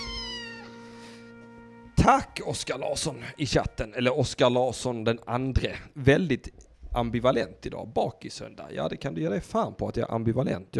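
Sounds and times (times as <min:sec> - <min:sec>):
cat meowing: 0:00.0 - 0:00.8
speech: 0:02.1 - 0:10.7.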